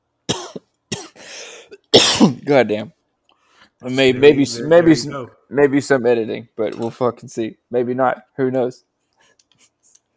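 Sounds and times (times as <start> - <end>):
person coughing with raspy wheeze: 0.3 - 2.4
speech: 2.0 - 3.0, 3.8 - 8.9.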